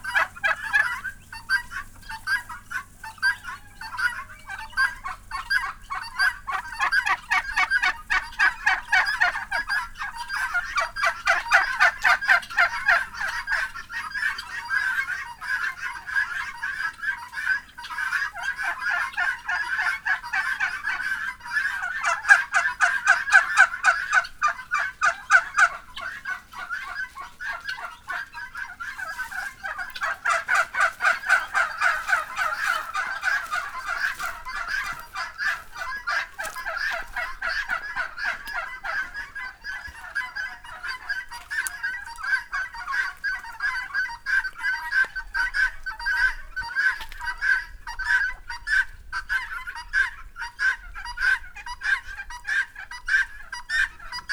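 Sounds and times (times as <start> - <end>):
guinea fowl in a farmyard in Szolnok: 0.0 - 54.3.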